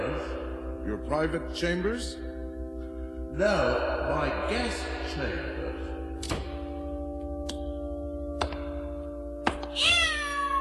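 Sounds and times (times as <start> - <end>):
steady droning musical tone: 0.0 - 9.5
speech: 0.8 - 2.4, 3.4 - 5.6
cat yowling after its tail is stepped on: 9.8 - 10.5.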